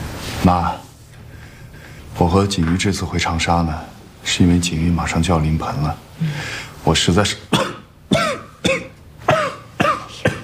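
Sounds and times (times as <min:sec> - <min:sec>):
speech: 0:00.4 - 0:00.9, 0:02.2 - 0:07.8
person coughing: 0:07.5 - 0:10.4.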